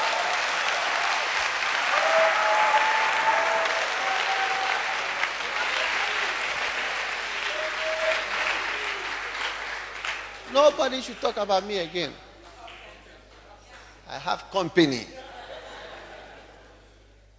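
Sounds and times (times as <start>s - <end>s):
large crowd applause and clapping: 0.0s - 11.3s
faint voices and cheers: 1.8s - 6.4s, 7.4s - 9.2s
speech: 10.6s - 12.2s, 14.1s - 15.2s
laughter: 15.1s - 17.0s.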